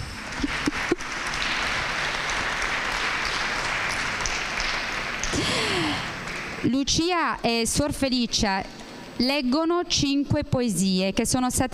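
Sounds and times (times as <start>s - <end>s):
audience applause at a school presentation: 0.0s - 6.7s
speech: 6.7s - 11.7s.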